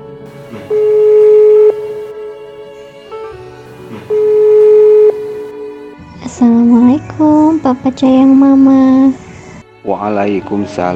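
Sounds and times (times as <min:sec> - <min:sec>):
ringback tone of an outgoing telephone call: 0:00.6 - 0:02.8, 0:04.0 - 0:06.0
speech: 0:06.4 - 0:09.2, 0:09.8 - 0:10.9.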